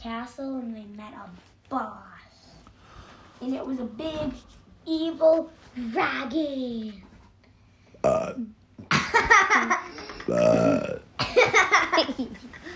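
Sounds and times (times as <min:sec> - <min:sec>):
speech: 0:00.0 - 0:02.3, 0:03.4 - 0:07.1, 0:08.0 - 0:12.7
child burping: 0:08.0 - 0:08.6, 0:10.2 - 0:11.2.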